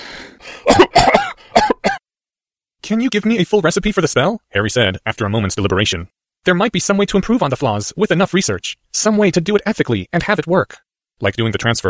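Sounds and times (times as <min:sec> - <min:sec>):
harsh retching cough with gagging: 0:00.4 - 0:02.0
speech: 0:02.9 - 0:11.8.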